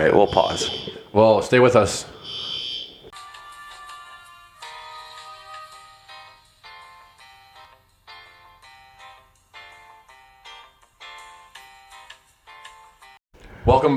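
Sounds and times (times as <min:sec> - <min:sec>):
speech: 0:00.0 - 0:02.2
fire alarm test in an apartment building blaring shrill electronic tones: 0:00.0 - 0:03.1.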